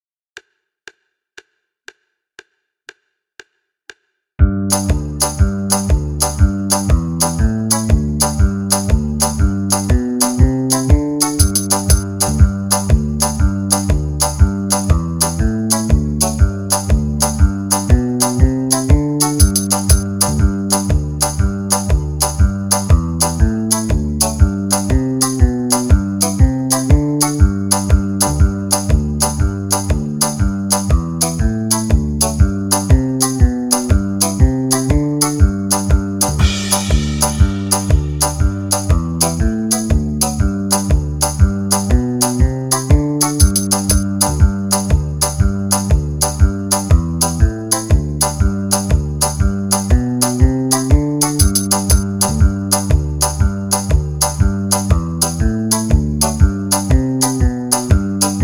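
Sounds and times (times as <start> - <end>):
banjo backing track in the key of G: 4.4 - 58.4.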